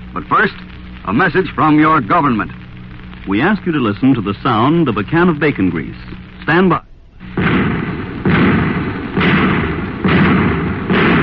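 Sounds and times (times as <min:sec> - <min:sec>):
speech: 0:00.2 - 0:02.6, 0:03.2 - 0:06.9
anti-tank shells firing: 0:07.3 - 0:11.2.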